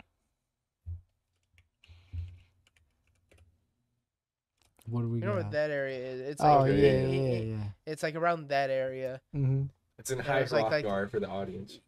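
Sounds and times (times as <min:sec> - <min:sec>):
typing on a computer keyboard: 0:01.3 - 0:03.5
speech: 0:04.9 - 0:11.8.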